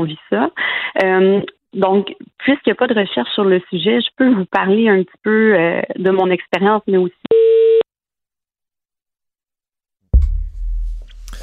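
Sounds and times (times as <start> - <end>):
speech: 0.0 - 7.2
telephone busy-signal beep as a phone call disconnects: 7.3 - 7.8.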